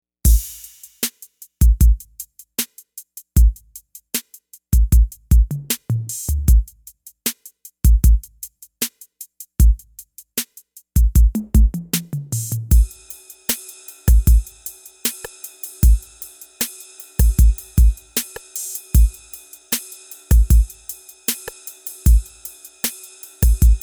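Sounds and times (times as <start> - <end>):
analog drum kit: 0.3 - 23.8.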